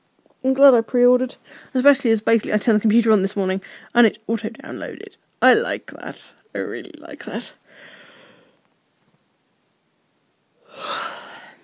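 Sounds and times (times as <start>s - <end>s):
speech: 0.4s - 7.9s
person yawning: 10.6s - 11.6s.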